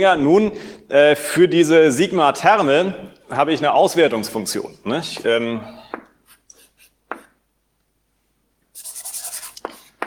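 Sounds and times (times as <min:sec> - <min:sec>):
speech: 0:00.0 - 0:05.8
handwriting strokes: 0:06.3 - 0:07.0, 0:08.8 - 0:10.0.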